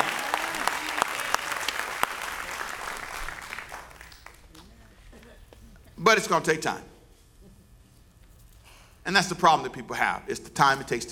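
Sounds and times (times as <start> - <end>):
large crowd applauding: 0.0 - 4.5
speech: 6.1 - 6.9, 9.1 - 11.1.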